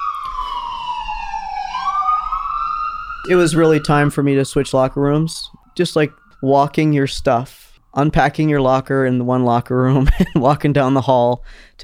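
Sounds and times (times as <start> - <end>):
ambulance siren wailing: 0.0 - 7.8
speech: 3.2 - 11.8.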